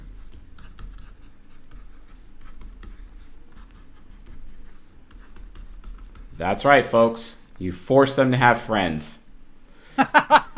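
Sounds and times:
handwriting with a pen or pencil: 0:00.0 - 0:07.4
speech: 0:06.4 - 0:09.2
laughter: 0:10.0 - 0:10.5.

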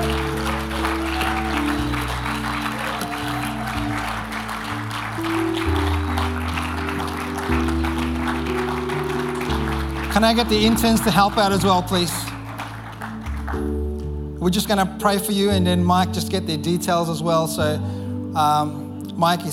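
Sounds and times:
crowd clapping: 0:00.0 - 0:14.8
sustained keyboard or organ chords: 0:00.0 - 0:19.5
speech: 0:10.2 - 0:12.2, 0:14.4 - 0:19.5.

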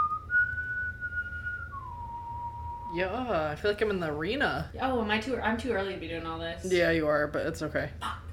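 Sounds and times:
person whistling a short tune: 0:00.0 - 0:02.9
low rumble: 0:00.0 - 0:08.3
speech: 0:02.9 - 0:08.2.

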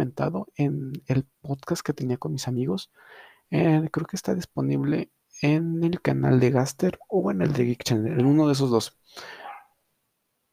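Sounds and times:
speech: 0:00.0 - 0:09.4
single sharp dog bark: 0:08.2 - 0:08.5, 0:09.4 - 0:09.7.

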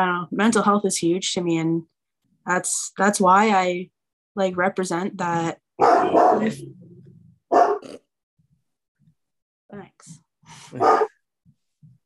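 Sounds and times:
speech: 0:00.0 - 0:06.8, 0:09.7 - 0:11.1
dog barking aggressively: 0:05.8 - 0:06.6, 0:07.5 - 0:07.9, 0:10.8 - 0:11.2.

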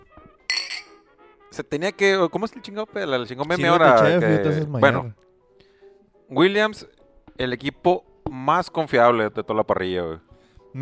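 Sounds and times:
glasses clinking in a toast: 0:00.5 - 0:01.0
speech: 0:01.6 - 0:05.2, 0:06.3 - 0:10.8.

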